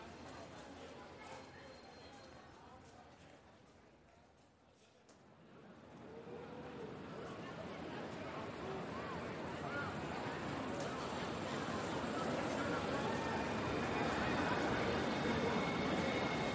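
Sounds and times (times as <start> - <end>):
dense crowd chatter on a train platform: 0.0 - 16.5
rumbling rail noise at a train platform: 9.3 - 16.5.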